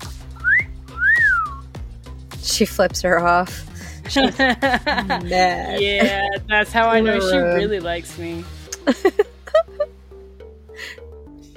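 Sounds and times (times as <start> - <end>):
person whistling two short notes: 0.3 - 1.7
speech: 2.5 - 9.2
laughter: 3.8 - 7.7, 8.8 - 9.9.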